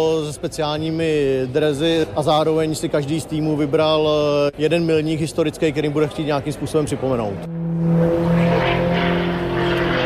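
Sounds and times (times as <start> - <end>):
speech: 0.0 - 8.4
propeller sport airplane engine droning during aerobatics over a Prague airfield: 7.4 - 10.0.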